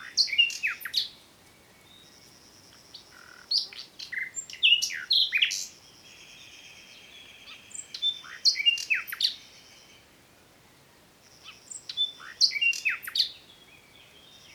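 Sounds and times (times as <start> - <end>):
common nightingale Luscinia megarhynchos singing: 0.0 - 10.1, 10.8 - 14.5.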